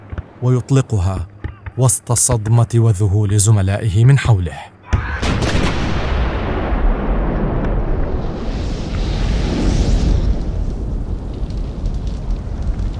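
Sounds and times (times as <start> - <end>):
speech: 0.4 - 4.7
shell explosion rumbling roar hitting the ship Ocean in the strait: 5.0 - 12.9
Ottoman gun firing a 250 kilogram shell: 5.2 - 8.0.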